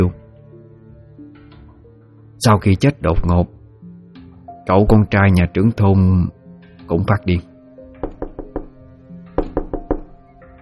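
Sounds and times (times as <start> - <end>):
speech: 0.0 - 0.2, 2.4 - 3.6, 4.7 - 7.5
knocking on a door from outside: 8.0 - 10.2.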